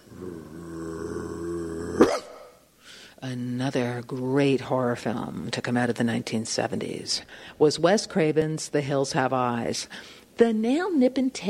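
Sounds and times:
dog growling: 0.0s - 2.5s
speech: 2.0s - 2.2s, 3.2s - 11.4s
dog barking: 2.0s - 2.5s.

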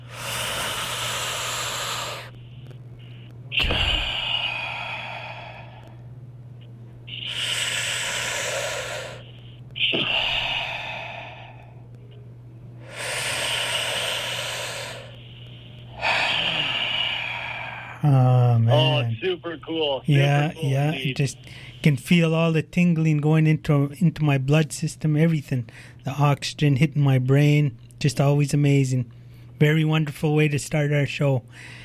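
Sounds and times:
slow deep breaths in and out: 0.0s - 6.2s, 7.0s - 12.0s, 12.8s - 18.7s, 21.3s - 22.0s, 25.7s - 26.0s, 31.5s - 31.8s
steady low hum: 0.0s - 31.8s
speech: 19.3s - 31.8s.

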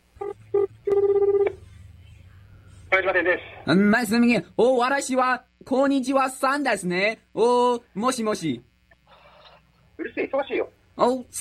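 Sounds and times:
phone ringback tone on an outgoing prank call from Guangdong to a Japanese shop: 0.2s - 1.6s
speech: 3.0s - 8.7s, 10.0s - 11.3s.

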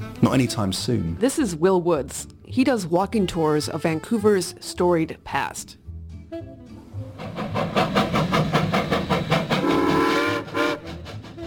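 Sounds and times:
speech: 0.2s - 5.8s
steam locomotive chugging: 7.0s - 11.4s
steam locomotive whistle: 9.1s - 11.4s.

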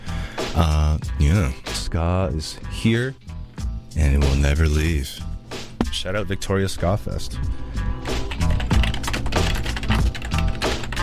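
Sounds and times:
speech: 0.6s - 3.3s, 3.9s - 5.3s, 5.9s - 7.6s
laptop keyboard typing: 8.2s - 11.0s.

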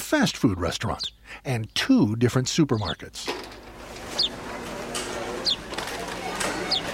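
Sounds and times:
speech: 0.1s - 3.6s
house sparrow chirping: 0.7s - 1.8s, 2.7s - 3.2s, 4.0s - 6.9s.

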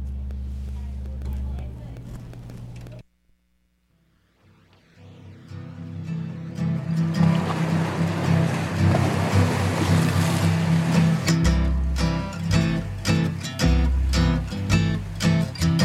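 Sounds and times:
soft musical drone: 4.0s - 15.8s
ocean waves rushing: 4.4s - 12.5s.

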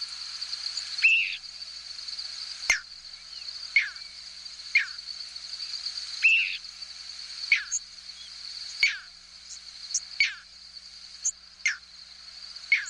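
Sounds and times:
nighttime drone of crickets: 0.0s - 12.8s
nocturnal flight calls of migrating birds over a hayfield in central New York State: 0.8s - 1.4s, 6.2s - 6.6s, 7.4s - 9.1s, 9.9s - 10.4s, 12.7s - 12.8s.

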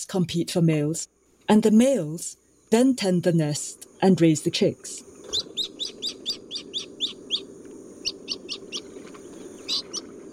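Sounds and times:
speech: 0.0s - 6.0s
jacana chattering calls: 4.4s - 10.3s.

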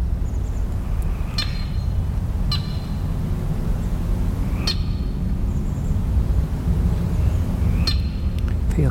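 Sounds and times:
steady low rumble: 0.0s - 8.9s
red-winged blackbird check calls in a marsh on Saturna Island: 0.3s - 3.1s, 4.5s - 6.0s, 7.1s - 8.9s.

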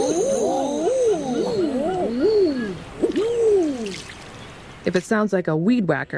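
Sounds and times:
Common Eider cooing calls: 0.0s - 4.4s
speech: 4.9s - 6.1s.

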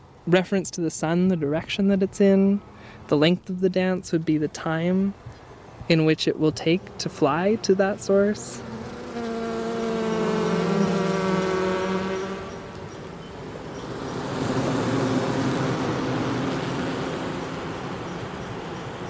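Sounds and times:
speech: 0.2s - 8.7s
honeybees buzzing around an opened hive during a hive inspection: 6.5s - 19.0s.

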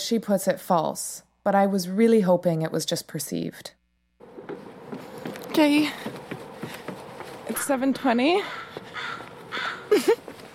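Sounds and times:
speech: 0.1s - 3.8s, 5.6s - 6.2s, 7.5s - 10.2s
crows cawing in the early morning: 7.5s - 10.2s.

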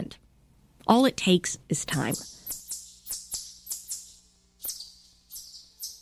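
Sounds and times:
speech: 0.9s - 2.4s
kingbird sharp high buzzy chirps: 1.9s - 6.0s.

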